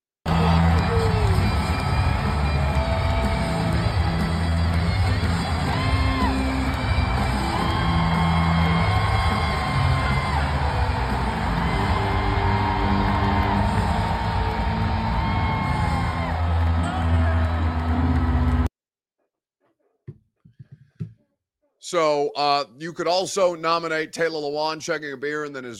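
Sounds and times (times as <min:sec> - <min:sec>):
huge arena crowd cheering and yelling: 0:00.2 - 0:18.7
speech: 0:21.9 - 0:25.7.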